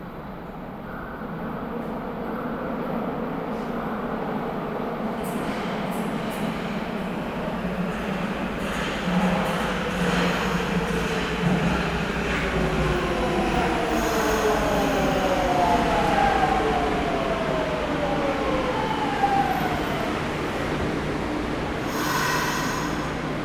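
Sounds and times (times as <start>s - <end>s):
subway train arriving at station platform: 0.0s - 23.4s
brief high hisses: 21.9s - 23.2s.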